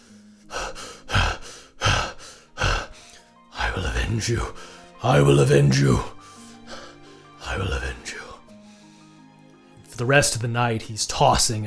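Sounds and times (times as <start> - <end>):
heavy ragged gasping breathing: 0.0 - 5.0, 6.0 - 9.3
speech: 3.8 - 6.2, 10.0 - 11.6.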